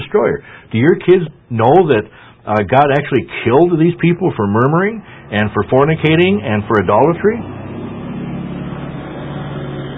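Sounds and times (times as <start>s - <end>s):
speech: 0.1s - 7.6s
neighbor's truck driving past: 4.0s - 9.9s.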